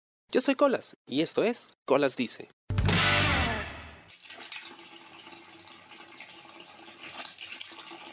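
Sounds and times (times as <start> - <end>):
speech: 0.3 - 2.6
water pouring into a bucket: 4.0 - 8.1.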